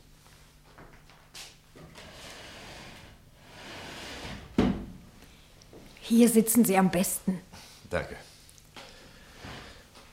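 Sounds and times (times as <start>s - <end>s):
chair being moved across the floor: 1.8s - 4.8s, 9.2s - 9.9s
speech: 6.1s - 8.3s.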